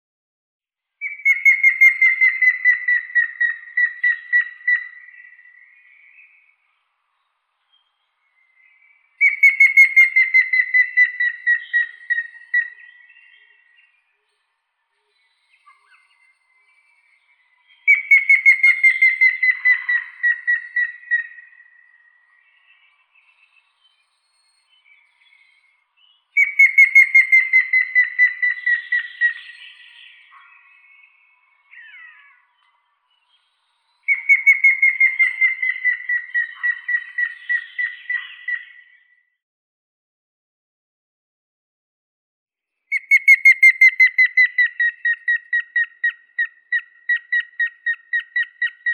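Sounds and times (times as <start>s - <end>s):
grey-headed woodpecker Picus canus: 1.0s - 5.6s, 9.2s - 13.3s, 17.9s - 22.0s, 26.4s - 31.1s, 34.1s - 39.0s, 42.9s - 48.9s.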